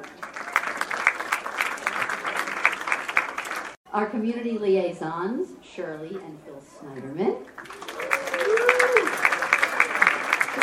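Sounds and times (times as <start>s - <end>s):
crowd clapping: 0.0s - 3.8s, 7.5s - 10.6s
speech: 3.9s - 7.8s
whistle or whoop from crowd: 7.9s - 9.2s.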